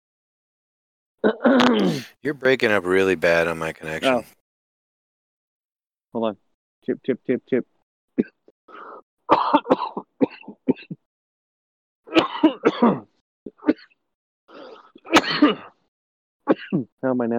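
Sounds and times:
coughing and throat-clearing over a voice-call connection: 0:01.2 - 0:02.2, 0:08.2 - 0:11.1, 0:12.1 - 0:15.8, 0:16.4 - 0:17.0
speech: 0:01.2 - 0:04.4, 0:06.1 - 0:08.8, 0:12.1 - 0:13.9, 0:15.1 - 0:15.7, 0:16.5 - 0:17.3.

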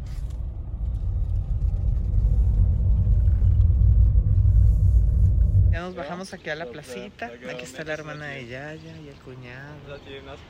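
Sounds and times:
car engine and road rumble driving through a town in the Czech Republic: 0:00.0 - 0:06.1
speech: 0:05.8 - 0:10.4.

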